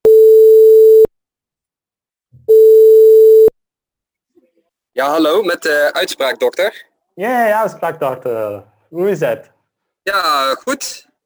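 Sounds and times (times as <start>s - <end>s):
telephone call tone beeps: 0.1s - 1.1s, 2.5s - 3.5s
speech: 5.0s - 9.5s, 10.1s - 11.1s.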